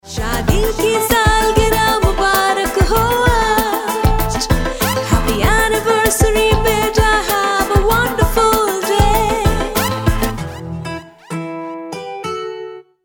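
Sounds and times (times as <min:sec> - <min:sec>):
woman singing an anniversary tune in Hindi: 0:00.0 - 0:10.4.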